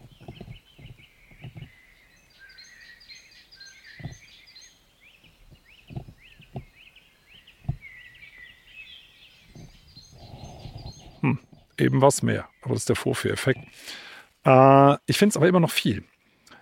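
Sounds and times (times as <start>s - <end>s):
soft low thuds: 0.0s - 2.4s, 3.8s - 4.4s, 5.1s - 8.5s, 9.3s - 11.8s
birds singing and chirping in woods in late afternoon: 0.0s - 16.5s
speech: 11.3s - 16.2s.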